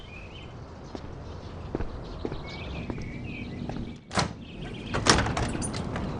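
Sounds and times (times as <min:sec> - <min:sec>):
footsteps: 0:00.9 - 0:04.1
door opening with a clack and sliding rub: 0:03.9 - 0:06.1.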